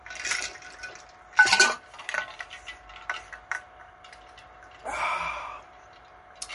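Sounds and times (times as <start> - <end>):
ice clinking and rattling in a small aluminum cup while drinking: 0.0 - 4.8, 5.9 - 6.5
faint steady hum: 0.0 - 6.5
breathy bursts while drinking: 4.8 - 5.8.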